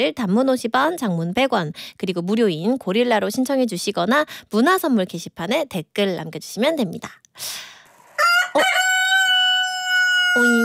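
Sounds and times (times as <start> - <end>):
speech: 0.0 - 7.8, 8.5 - 8.8, 10.4 - 10.6
rooster crowing: 8.1 - 10.6.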